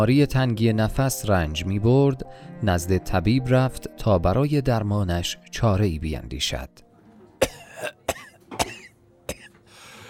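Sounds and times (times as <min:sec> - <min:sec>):
speech: 0:00.0 - 0:06.8
faint breathy sounds: 0:02.2 - 0:02.6, 0:09.6 - 0:10.0
person coughing in a rough hacking fit: 0:07.4 - 0:09.6.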